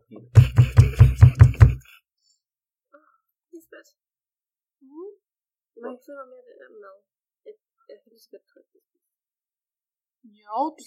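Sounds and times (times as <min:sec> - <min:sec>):
speech: 0:00.1 - 0:00.6, 0:05.8 - 0:09.1, 0:10.2 - 0:10.8
solid-sounding knocking: 0:00.4 - 0:01.8.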